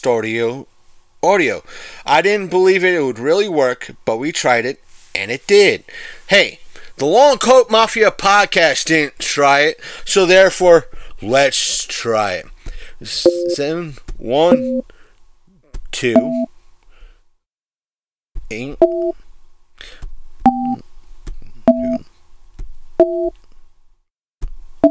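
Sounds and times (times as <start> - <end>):
speech: 0.0 - 15.0, 15.9 - 16.5, 18.5 - 19.2, 23.0 - 23.4
touch-tone dialing of a phone number into a conference-call hotline: 13.3 - 13.6, 14.5 - 14.8, 20.5 - 20.8, 21.7 - 22.0, 23.0 - 23.3.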